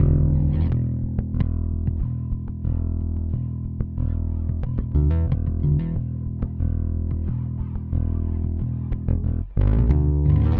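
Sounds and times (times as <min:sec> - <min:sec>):
effected bass with delay: 0:00.0 - 0:10.5.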